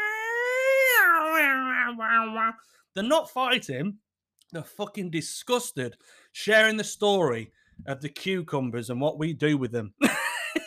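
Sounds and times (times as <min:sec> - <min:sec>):
person imitating cats yowling at night: 0:00.0 - 0:02.6
speech: 0:02.0 - 0:10.2.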